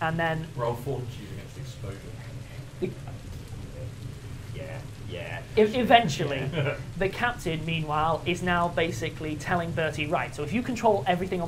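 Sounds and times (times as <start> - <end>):
speech: 0.0 - 2.2, 2.8 - 3.2, 5.1 - 11.4
heavy rain downpour: 0.0 - 11.4
faint indistinct murmurs: 1.1 - 5.7.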